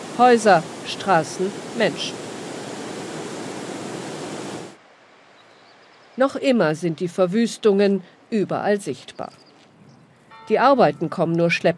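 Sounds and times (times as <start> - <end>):
raging floodwater from a severe storm rushing past: 0.0 - 5.3
speech: 0.2 - 2.2, 6.2 - 9.4, 10.5 - 11.7.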